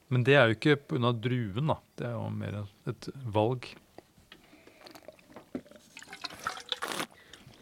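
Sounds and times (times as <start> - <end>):
speech: 0.1 - 3.8
wet slurping of wine drawn over the tongue while tasting: 4.8 - 7.5.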